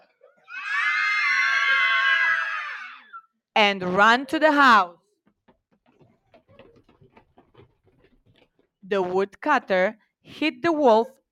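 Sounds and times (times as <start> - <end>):
loud sustained high-pitched scream: 0.4 - 3.3
speech: 3.6 - 5.0, 8.9 - 11.2.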